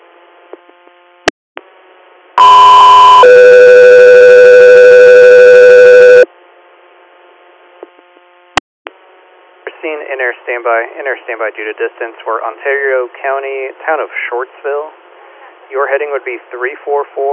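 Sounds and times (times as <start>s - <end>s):
two-tone radio dispatch alert tones: 2.4s - 6.2s
speech: 10.5s - 15.0s, 15.7s - 17.3s.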